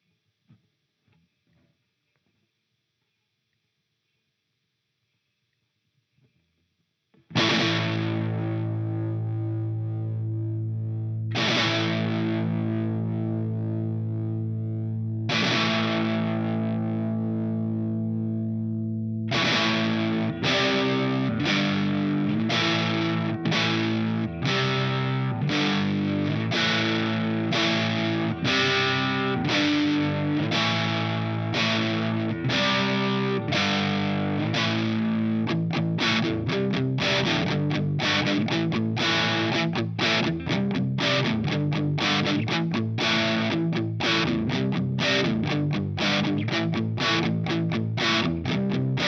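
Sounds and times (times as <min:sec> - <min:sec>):
Orange Thunderverb 200 guitar amplifier: 0:07.2 - 0:49.0.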